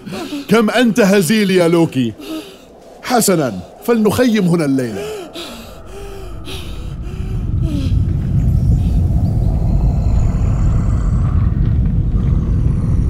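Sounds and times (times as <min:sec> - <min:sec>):
speech: 0:00.1 - 0:05.4
snoring of a giant asleep in a forest: 0:04.9 - 0:13.0.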